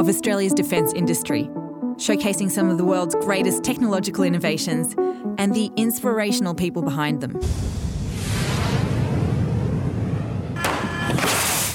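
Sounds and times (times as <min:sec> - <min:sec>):
speech: 0:00.0 - 0:08.4
steady heavy low rumble: 0:07.4 - 0:10.6
loud bang: 0:07.4 - 0:11.7
bright rushing whoosh: 0:07.5 - 0:10.4.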